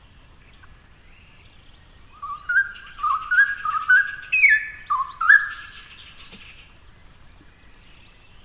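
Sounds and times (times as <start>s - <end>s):
Straw-headed bulbul pouring out a gurgling warble: 2.2s - 6.1s.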